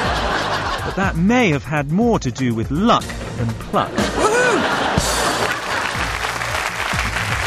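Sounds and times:
laughter: 0.0 - 1.5, 3.8 - 7.2
speech: 1.0 - 4.2
dense crowd applause added as a sound effect: 4.2 - 7.4.

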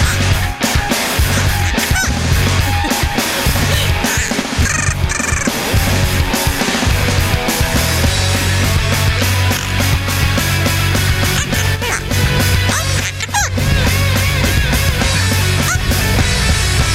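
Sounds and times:
parrot squawking in its cage: 0.0 - 5.7, 11.2 - 13.6, 15.0 - 16.1
laughter: 0.0 - 8.0, 8.8 - 16.6.

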